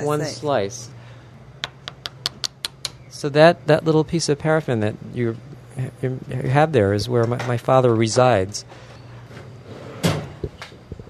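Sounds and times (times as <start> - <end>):
speech: 0.0 - 1.0, 3.1 - 8.9
small desk drawer sliding shut: 9.4 - 10.4.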